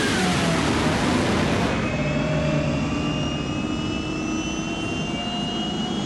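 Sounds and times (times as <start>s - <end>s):
jet engine relighting with turbine roar: 0.0s - 6.0s.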